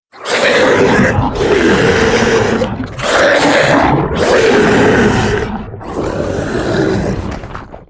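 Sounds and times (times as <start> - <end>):
aggressive monster alien roar: 0.1 - 7.8.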